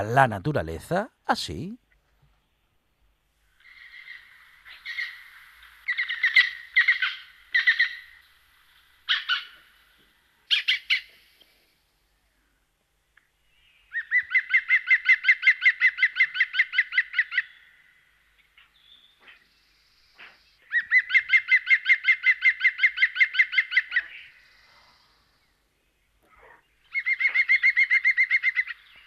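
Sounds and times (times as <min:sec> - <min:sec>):
speech: 0:00.0 - 0:01.8
woodpecker calling: 0:03.6 - 0:11.6, 0:13.7 - 0:25.4, 0:26.2 - 0:29.0.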